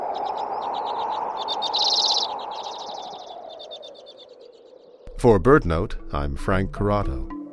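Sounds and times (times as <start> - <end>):
common redpoll chattering calls: 0.2 - 5.0
speech: 5.2 - 7.4.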